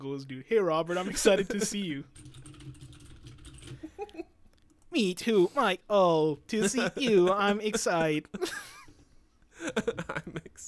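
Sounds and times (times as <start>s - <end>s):
speech: 0.0s - 2.8s, 4.9s - 8.6s, 9.6s - 10.6s
computer keyboard typing: 2.1s - 3.9s.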